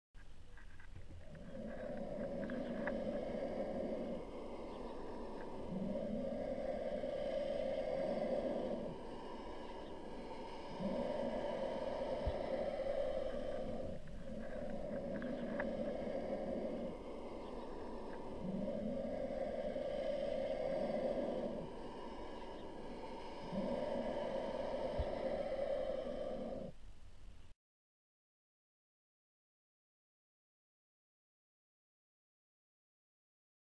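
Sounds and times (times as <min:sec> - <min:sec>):
Turkey Vulture nest sounds: 0:00.2 - 0:27.5.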